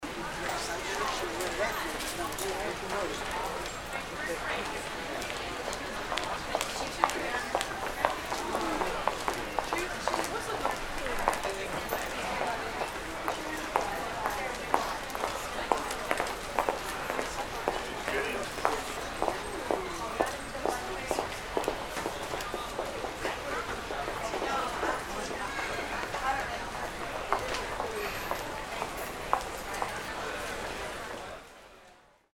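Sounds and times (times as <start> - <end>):
small shopping center ambience: 0.0 - 32.3.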